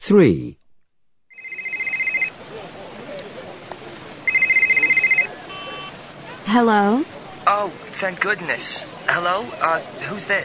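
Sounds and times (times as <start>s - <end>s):
speech: 0.0s - 0.6s, 6.5s - 10.4s
cell phone ringing in trilling bursts: 1.3s - 2.3s, 4.3s - 5.9s
steady murmur of noise: 1.4s - 10.4s.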